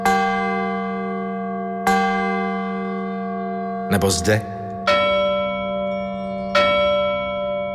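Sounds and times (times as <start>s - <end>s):
large grave safety bell struck in an exhibition room: 0.0s - 7.7s
speech: 3.9s - 4.6s.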